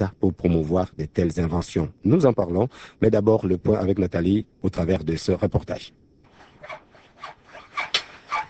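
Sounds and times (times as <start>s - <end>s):
speech: 0.0s - 6.1s
hand saw rasping through wood: 6.3s - 8.4s.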